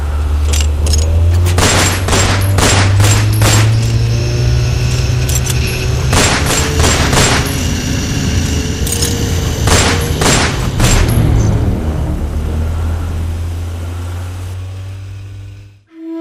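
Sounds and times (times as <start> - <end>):
steady low boat motor drone: 0.0 - 15.9
gunfire from a boat during a chase on the water: 1.4 - 4.0, 6.0 - 7.7, 9.6 - 11.5.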